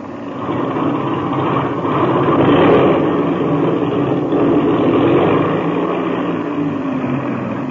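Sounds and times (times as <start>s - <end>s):
engine being run up: 0.0s - 7.6s.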